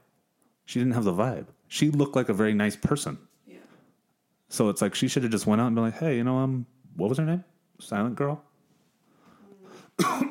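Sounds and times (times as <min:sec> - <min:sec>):
speech: 0:00.7 - 0:03.3, 0:04.5 - 0:08.5
person coughing into the microphone: 0:09.7 - 0:10.2.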